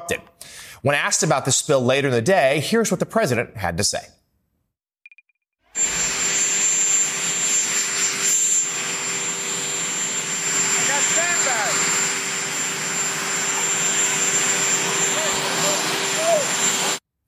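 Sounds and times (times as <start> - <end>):
speech: 0.1 - 4.2
helicopter turbine engine running on a lawn: 5.8 - 17.0.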